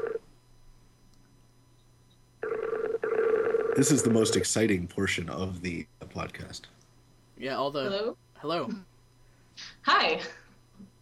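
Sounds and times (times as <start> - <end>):
phone line ringback tone as a call connects: 0.0 - 0.2, 2.4 - 4.5
faint low hum: 0.0 - 11.0
speech: 3.8 - 6.8, 7.4 - 8.9, 9.6 - 10.4.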